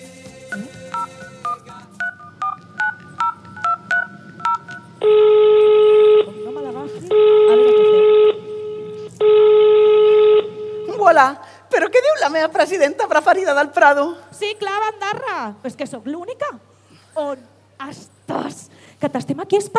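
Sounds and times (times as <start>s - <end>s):
touch-tone phone dialing beeps: 0.9s - 10.9s
speech: 11.2s - 16.6s, 17.2s - 19.7s.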